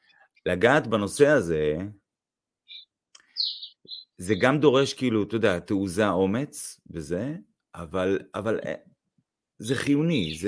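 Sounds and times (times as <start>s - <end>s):
speech: 0.4s - 2.0s, 4.2s - 8.9s, 9.6s - 10.4s
high bird chirps outdoors: 2.6s - 4.8s, 10.0s - 10.4s
bright sustained bird whistling call: 2.7s - 4.5s.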